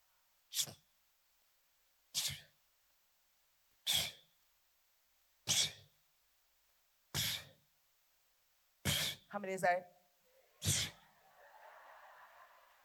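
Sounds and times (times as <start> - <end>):
person imitating sneezing: 0.5 - 0.8, 2.2 - 2.6, 3.8 - 4.3, 5.5 - 5.9, 7.1 - 7.6, 8.8 - 9.3, 10.6 - 11.0
speech: 9.3 - 10.0
laughter: 10.8 - 12.8.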